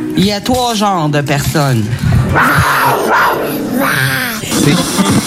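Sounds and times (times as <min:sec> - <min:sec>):
speech: 0:00.2 - 0:05.2
tiger roar: 0:02.0 - 0:05.0
yelling screaming-like voices: 0:02.2 - 0:04.5.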